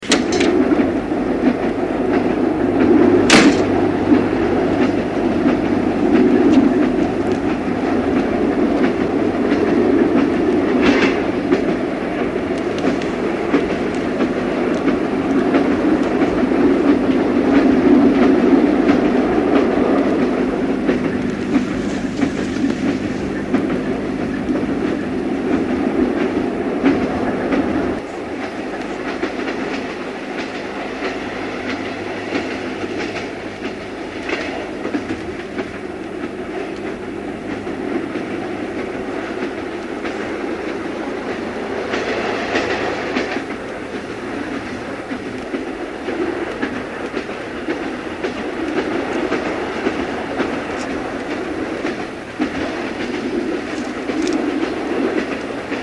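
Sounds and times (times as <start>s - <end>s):
train interior: 0.0s - 55.8s.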